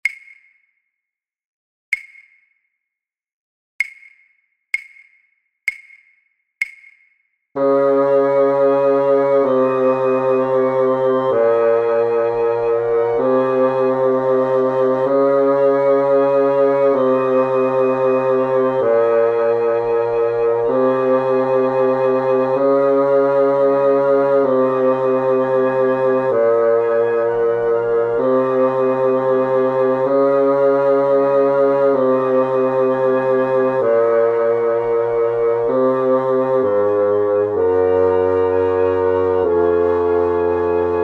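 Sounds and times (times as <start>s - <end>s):
contrabass flute: 7.6s - 41.0s.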